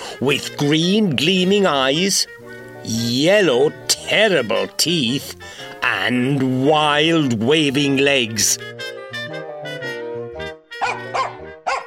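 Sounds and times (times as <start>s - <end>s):
speech: 0.2s - 8.8s
dog barking and yapping: 10.8s - 11.8s.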